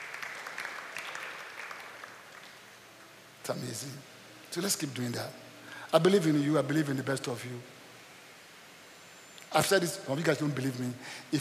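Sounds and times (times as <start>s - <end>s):
crowd applauding: 0.0s - 2.8s
speech: 3.5s - 7.8s, 9.5s - 11.3s.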